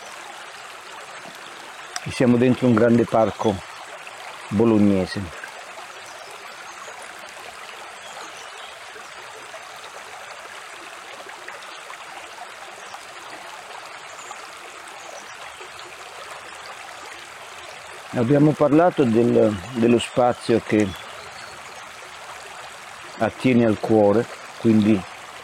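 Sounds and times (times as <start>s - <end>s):
small stream babbling in a large park in Bologna: 0.0s - 25.4s
speech: 2.0s - 3.7s, 4.5s - 5.4s, 18.2s - 21.0s, 23.2s - 25.1s.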